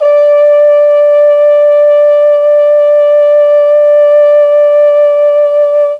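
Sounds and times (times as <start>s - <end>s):
mellotron chamber trombone playing D3: 0.0s - 5.9s.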